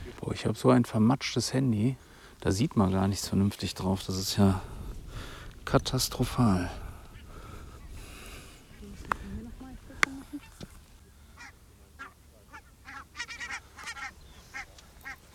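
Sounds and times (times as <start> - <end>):
speech: 0.3 - 6.8
flock of migrating birds honking overhead: 7.0 - 15.3.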